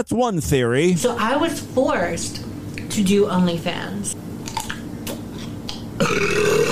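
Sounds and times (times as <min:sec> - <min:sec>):
speech: 0:00.0 - 0:04.3, 0:06.0 - 0:06.6
woman burping loudly: 0:05.7 - 0:06.6.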